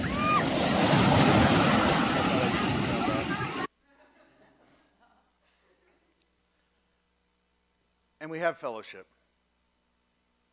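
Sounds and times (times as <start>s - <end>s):
surf washing onto a shore: 0.0s - 3.7s
wind: 0.0s - 3.7s
laughter: 0.9s - 6.1s
speech: 8.2s - 9.2s.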